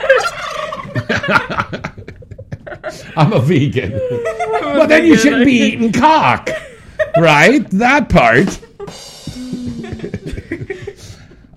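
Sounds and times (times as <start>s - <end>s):
turkey gobbling: 0.0s - 1.1s
laughter: 0.0s - 11.5s
speech: 1.3s - 2.1s, 3.2s - 6.6s, 7.2s - 8.7s.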